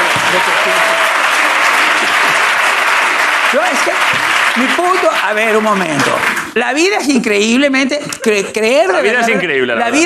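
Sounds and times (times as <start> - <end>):
studio audience applause: 0.0 - 6.6
speech: 3.8 - 10.0.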